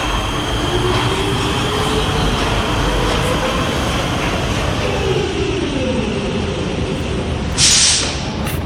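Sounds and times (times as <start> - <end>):
metro train car wheels clattering: 0.0 - 5.0
metro train rail rumble: 0.0 - 8.6.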